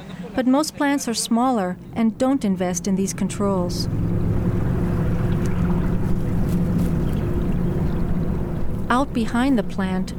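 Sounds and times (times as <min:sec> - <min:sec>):
speech: 0:00.4 - 0:04.2, 0:08.9 - 0:10.1
small stream pouring into a larger body of water: 0:01.8 - 0:09.3.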